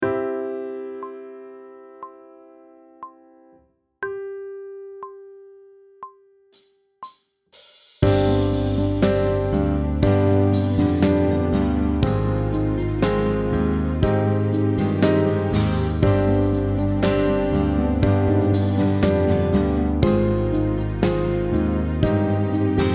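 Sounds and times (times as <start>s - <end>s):
pop vocals sight singing backing track: 8.0s - 22.9s.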